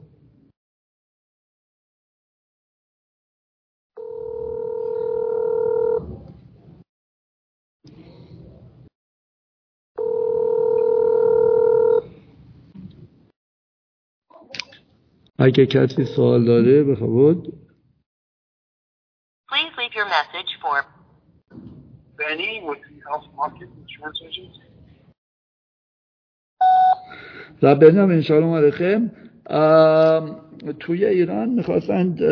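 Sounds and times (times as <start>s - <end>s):
telephone calling tones: 4.0s - 6.0s, 10.0s - 12.1s, 26.6s - 27.1s
speech: 15.4s - 17.6s, 22.3s - 24.7s, 27.1s - 32.3s.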